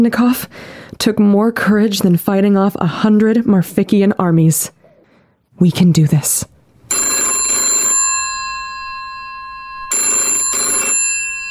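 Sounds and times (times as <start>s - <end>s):
speech: 0.0s - 4.8s, 5.6s - 7.1s
old-style telephone bell ringing: 6.9s - 11.4s.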